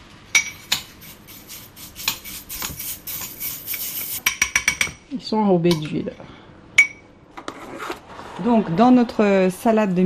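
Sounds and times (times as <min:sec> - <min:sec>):
knife rasping, scraping strokes: 0:00.6 - 0:04.2
speech: 0:05.2 - 0:06.3, 0:08.4 - 0:10.0.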